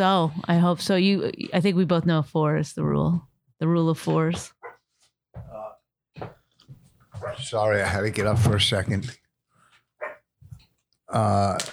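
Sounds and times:
speech: 0:00.0 - 0:04.6, 0:06.2 - 0:06.4, 0:07.2 - 0:09.2, 0:11.1 - 0:11.7
dog barking: 0:04.6 - 0:04.8, 0:07.2 - 0:07.5, 0:10.0 - 0:10.3.

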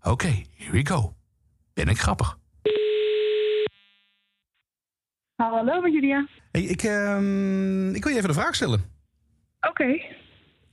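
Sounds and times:
speech: 0:00.1 - 0:01.2, 0:01.8 - 0:02.4, 0:05.4 - 0:08.9, 0:09.6 - 0:10.2
telephone ringback tone while calling a colleague: 0:02.7 - 0:03.7.

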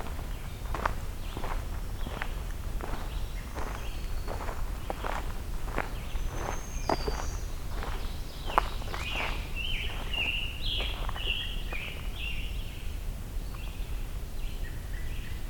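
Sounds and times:
footsteps crunching along a forest trail: 0:00.0 - 0:12.2
American Robin song on a forest trail: 0:00.0 - 0:15.4.

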